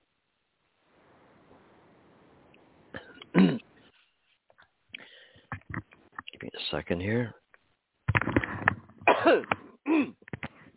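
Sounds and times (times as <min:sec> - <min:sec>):
man clearing his throat: 0:03.0 - 0:03.6, 0:09.1 - 0:10.2
man coughing with rough hacking bursts: 0:03.0 - 0:03.6, 0:09.1 - 0:10.2
speech: 0:06.8 - 0:07.4.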